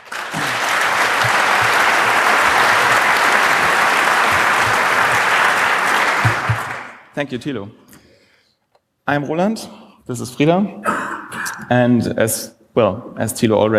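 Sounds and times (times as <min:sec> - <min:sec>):
audience applause from a room full of people: 0:00.0 - 0:07.1
speech: 0:07.2 - 0:07.8, 0:09.1 - 0:10.9, 0:11.6 - 0:13.7.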